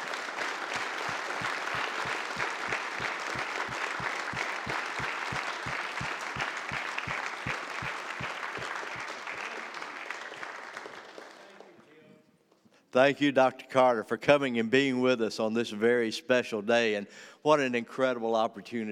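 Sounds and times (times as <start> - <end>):
audience applauding the preacher: 0.0 - 11.9
speech: 13.0 - 18.9.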